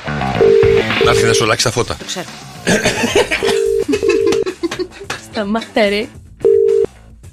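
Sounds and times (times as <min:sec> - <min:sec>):
telephone quick dialing sequence: 0:00.4 - 0:01.4, 0:06.5 - 0:06.9
phone line ringing tone bursts: 0:00.4 - 0:01.5, 0:03.4 - 0:04.4, 0:06.4 - 0:06.9
speech: 0:01.1 - 0:03.6, 0:05.4 - 0:06.2
people chuckling and murmuring: 0:02.7 - 0:05.4.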